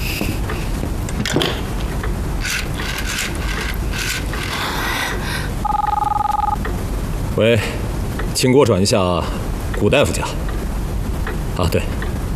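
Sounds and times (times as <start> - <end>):
low hum: 0.0 - 12.3
telephone being dialed with clicks and tonal bursts: 5.6 - 6.6
speech: 7.4 - 7.8, 8.4 - 10.5, 11.6 - 12.1.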